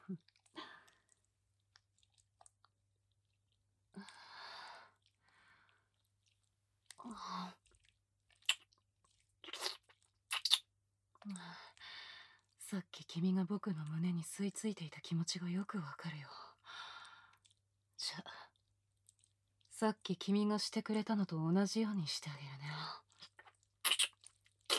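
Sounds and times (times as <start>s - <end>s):
speech: 0.1s - 0.4s, 12.7s - 16.4s, 19.8s - 22.8s
chewing and eating something crunchy: 0.2s - 3.4s, 4.9s - 7.0s, 7.6s - 10.6s, 23.1s - 24.7s
wet mouth clicks: 7.7s - 10.7s, 23.2s - 24.7s.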